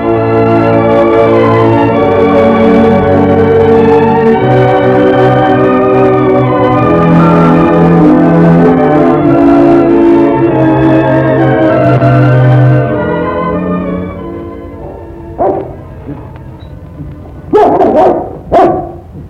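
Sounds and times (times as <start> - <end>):
tonal drone: 0.0 - 17.5
dog barking: 14.8 - 15.8, 17.5 - 19.1.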